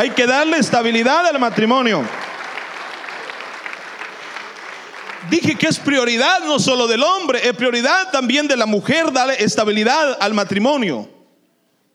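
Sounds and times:
speech: 0:00.0 - 0:02.2, 0:05.2 - 0:11.1
audience applauding during a morning church service: 0:00.0 - 0:06.8.

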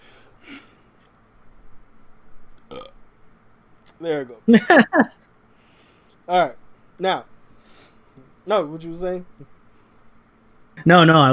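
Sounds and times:
throaty burps: 0:02.7 - 0:03.0
speech: 0:04.0 - 0:05.2, 0:06.3 - 0:07.3, 0:08.5 - 0:09.6, 0:10.8 - 0:11.3
laughter: 0:04.5 - 0:05.1.

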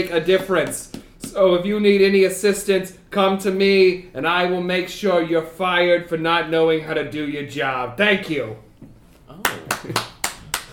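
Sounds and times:
speech: 0:00.0 - 0:08.6, 0:09.4 - 0:10.1
person clapping hands: 0:09.4 - 0:10.7.

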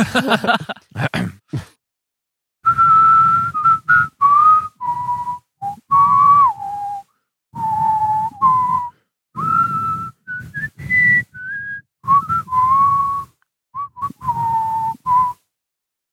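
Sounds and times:
laughter: 0:00.0 - 0:01.7
people whistling a song melody: 0:02.7 - 0:15.5.

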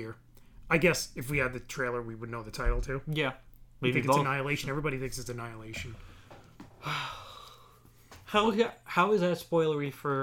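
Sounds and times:
speech: 0:00.0 - 0:06.1, 0:06.8 - 0:07.2, 0:08.3 - 0:10.2
drawn-out yawn with low voiced groan: 0:06.8 - 0:07.7.

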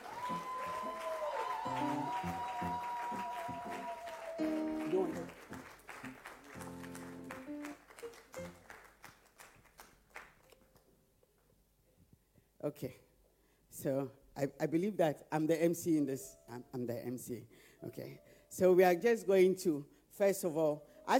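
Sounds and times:
crowd clapping: 0:00.0 - 0:10.9
speech: 0:01.7 - 0:02.8, 0:12.7 - 0:13.1, 0:13.8 - 0:21.1.

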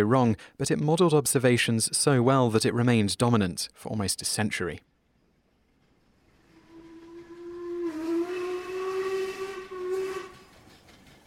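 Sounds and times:
speech: 0:00.0 - 0:04.9
steam engine whistle: 0:06.4 - 0:10.6
steam engine steam hissing: 0:06.4 - 0:11.2.

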